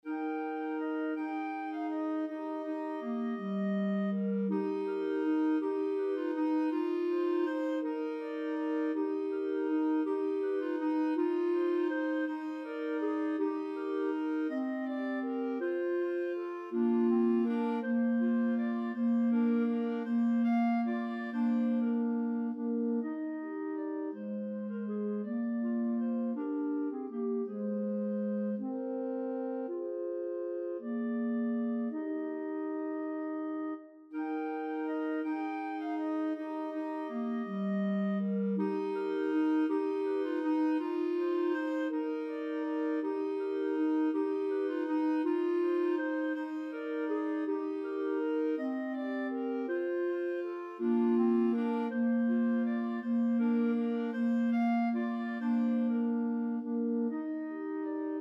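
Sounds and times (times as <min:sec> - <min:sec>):
clarinet trio playing: 0:00.0 - 0:58.2.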